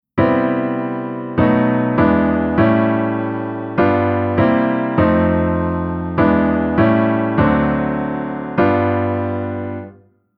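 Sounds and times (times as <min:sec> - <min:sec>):
reharmonized chord progression: 0:00.2 - 0:10.0.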